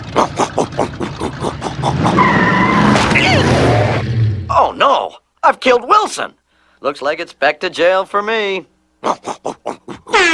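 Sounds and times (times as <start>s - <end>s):
supercharged riding lawn mower speeding: 0.0s - 4.5s
riding lawn mower tire squeal with a high sweeping whine: 1.8s - 4.3s
speech: 5.5s - 10.3s.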